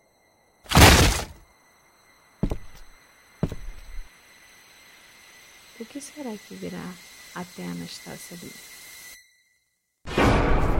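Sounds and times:
door being smashed in with splintering: 0.7s - 1.4s
heavy thuds: 0.7s - 1.4s, 2.4s - 2.8s, 3.4s - 4.0s
speech: 5.8s - 8.8s.

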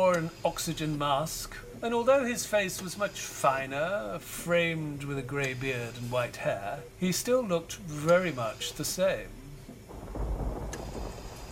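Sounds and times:
speech: 0.0s - 9.4s
steady rain: 0.0s - 11.4s
low rumble of thunder: 9.4s - 11.4s.

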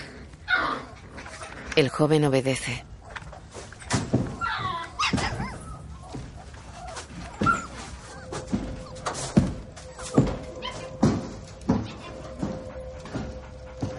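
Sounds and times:
speech: 1.8s - 2.9s
dog whimpering: 4.3s - 13.9s.

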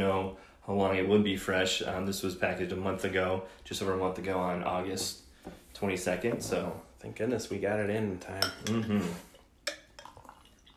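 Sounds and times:
speech: 0.2s - 9.3s
glass clinking: 8.4s - 10.7s
Double Two Hearted beer with Centennial hops pouring into a glass: 9.3s - 10.7s.

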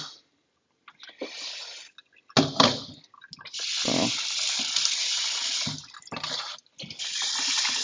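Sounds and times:
tap water running into a cooking pot: 1.8s - 7.8s.

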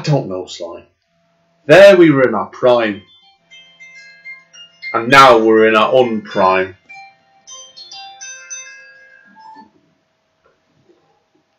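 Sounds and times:
speech: 0.0s - 0.9s, 1.6s - 3.1s, 4.9s - 6.8s
phone ringtone with melodic electronic tones: 2.7s - 9.9s.

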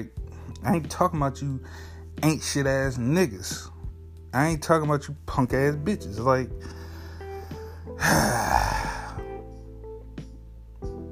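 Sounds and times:
speech: 0.0s - 6.8s, 7.9s - 9.0s
heavy labored breathing: 1.6s - 2.2s, 6.6s - 9.5s.

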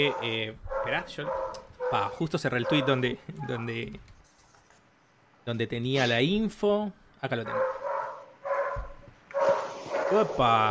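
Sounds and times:
dog barking: 0.0s - 3.7s, 7.5s - 10.3s
speech: 0.0s - 4.2s, 5.5s - 7.7s, 10.1s - 10.6s.

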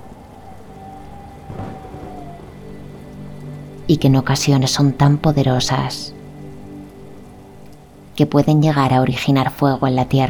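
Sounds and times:
thunder rumble: 0.0s - 6.6s
rain pattering on a surface: 0.0s - 10.2s
speech: 3.9s - 6.2s, 8.2s - 10.2s.

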